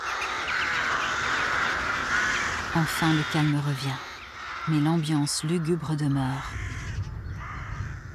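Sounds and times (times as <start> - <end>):
alarmed flock of crows and jackdaws cawing: 0.0 - 8.1
speech: 2.8 - 4.1, 4.7 - 6.7.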